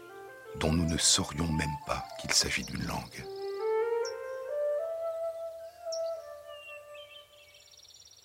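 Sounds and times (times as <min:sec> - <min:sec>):
speech: 0:00.6 - 0:03.4
bird singing long clear whistled notes: 0:01.8 - 0:04.5, 0:05.1 - 0:07.9
brief high bird chirps: 0:02.1 - 0:04.5, 0:05.4 - 0:08.2.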